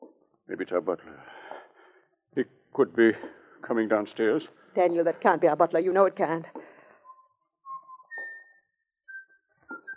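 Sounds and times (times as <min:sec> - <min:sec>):
speech: 0:00.6 - 0:01.5, 0:02.4 - 0:06.6
person whistling a slow steady tune: 0:07.0 - 0:09.9.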